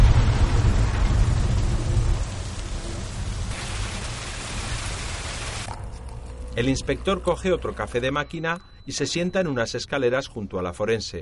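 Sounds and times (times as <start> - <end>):
heavy rain pouring: 0.0 - 5.7
speech: 6.6 - 11.2.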